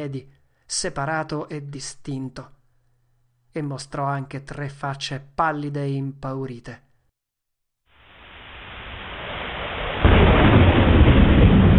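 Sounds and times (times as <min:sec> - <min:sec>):
speech: 0:00.0 - 0:02.6, 0:03.6 - 0:06.8
deep rolling thunder: 0:08.6 - 0:11.7.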